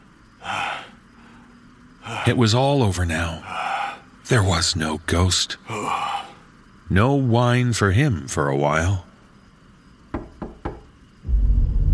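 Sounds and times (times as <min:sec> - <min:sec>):
speech: 0:02.1 - 0:03.6, 0:04.3 - 0:06.1, 0:06.9 - 0:09.1
sharp knocks muffled through a floor: 0:10.1 - 0:10.9
low rumbling swell of noise: 0:11.2 - 0:11.9.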